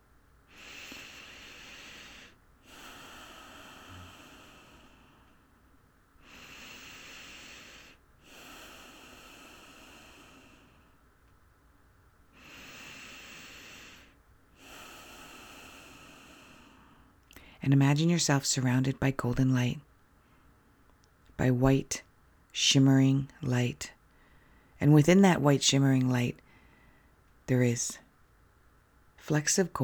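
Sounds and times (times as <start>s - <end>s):
slow deep human breathing: 0.5s - 11.1s, 12.3s - 17.6s, 24.1s - 24.8s, 26.4s - 27.3s
speech: 17.6s - 19.9s, 21.4s - 24.0s, 24.8s - 26.4s, 27.5s - 28.0s, 29.2s - 29.8s.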